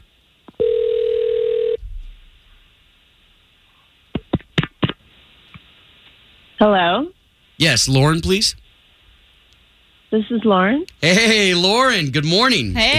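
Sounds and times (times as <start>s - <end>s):
steady telephone tone: 0.6s - 1.8s
speech: 6.6s - 8.6s, 10.1s - 12.9s.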